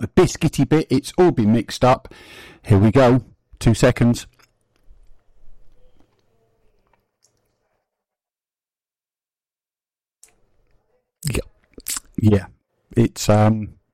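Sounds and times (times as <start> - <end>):
speech: 0.1 - 4.3, 11.2 - 11.5, 12.2 - 13.8
person eating a spoonful of cottage cheese mixed with smooth peanut butter: 4.3 - 7.9, 11.2 - 12.2.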